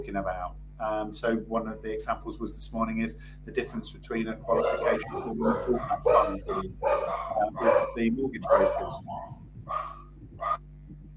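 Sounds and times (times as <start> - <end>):
speech: 0.0 - 10.6
steady low hum: 0.0 - 11.1
dog barks: 4.4 - 10.6.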